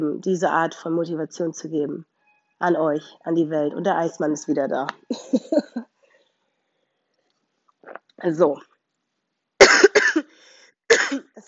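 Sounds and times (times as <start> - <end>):
speech: 0.0 - 5.9, 8.2 - 8.7
laughter: 5.1 - 5.8
harsh rasping coughs: 9.6 - 10.3, 10.9 - 11.3.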